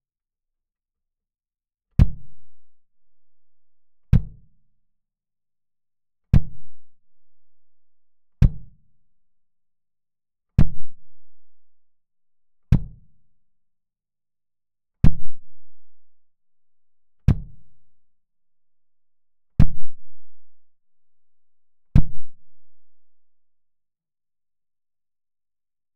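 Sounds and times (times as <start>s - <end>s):
kick drum pad: 2.0s - 2.4s, 4.1s - 4.6s, 6.3s - 6.8s, 8.4s - 8.9s, 10.6s - 11.0s, 12.7s - 13.1s, 15.0s - 15.5s, 17.3s - 17.6s, 19.6s - 20.0s, 22.0s - 22.4s.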